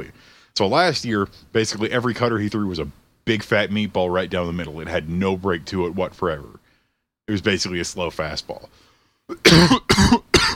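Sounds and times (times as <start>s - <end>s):
speech: 0.0s - 6.6s, 7.3s - 10.2s
harsh coughs: 9.3s - 10.5s.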